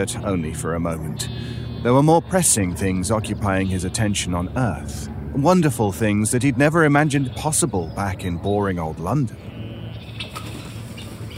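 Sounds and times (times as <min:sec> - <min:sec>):
speech: 0:00.0 - 0:09.6
steady low hum: 0:00.0 - 0:11.3
injured red-headed bird fluttering wings on the ground in heather: 0:10.2 - 0:11.3.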